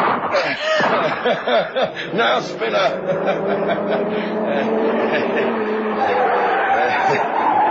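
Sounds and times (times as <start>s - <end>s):
gunshots: 0.0s - 1.4s
laughter: 0.3s - 7.6s
speech: 1.2s - 7.4s.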